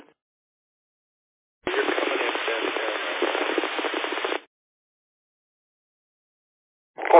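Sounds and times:
garbled crackly radio transmission with dense static: 1.7 - 4.5, 7.0 - 7.1.

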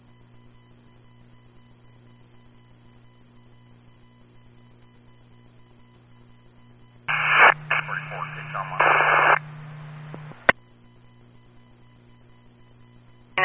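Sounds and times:
low steady electrical hum: 0.0 - 13.4
garbled distorted voice in radio static: 7.1 - 10.5
harsh radio static: 7.1 - 10.5.

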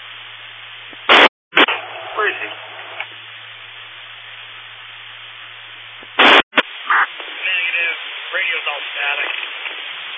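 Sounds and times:
loud radio crackling burst: 0.0 - 10.1
narrowband radio static hiss: 0.0 - 10.1
garbled radio transmission voices: 1.7 - 3.1, 6.1 - 9.5.

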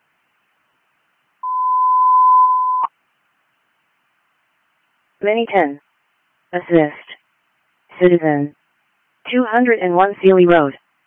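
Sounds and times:
electronic radio dispatch alert tone on channel five: 1.4 - 2.9
speech: 5.2 - 5.8, 6.5 - 7.1, 8.0 - 8.6, 9.2 - 10.8.

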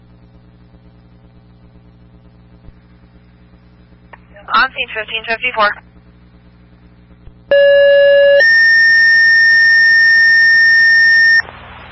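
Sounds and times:
speech: 4.5 - 5.9
electronic fire dispatch paging alert tones: 7.5 - 11.5.

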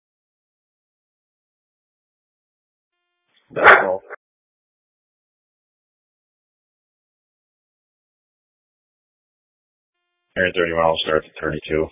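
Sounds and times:
speech: 3.5 - 4.1, 10.4 - 11.8
dog barking: 3.5 - 4.2
dog yelping softly: 3.6 - 4.2.

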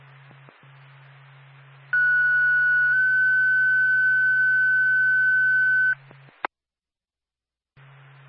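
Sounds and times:
low radio hiss and hum: 0.0 - 6.5.

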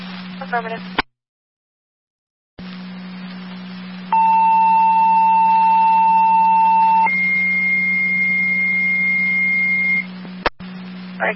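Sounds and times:
radio static and hum: 0.0 - 1.1, 2.6 - 11.3
speech: 0.5 - 1.0
fire dispatch radio paging tones: 4.1 - 10.1.

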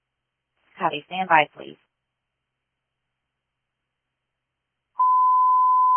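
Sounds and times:
speech: 0.8 - 1.8
dispatch radio test tone sent to a fire station: 5.0 - 5.9.

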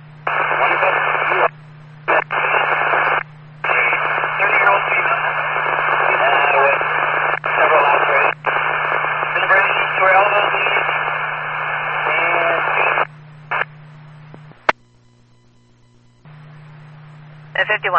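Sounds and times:
steady low hum: 0.0 - 17.9
tinny narrowband police radio voice crackling with static: 0.3 - 1.5, 2.1 - 13.6, 17.6 - 17.9.

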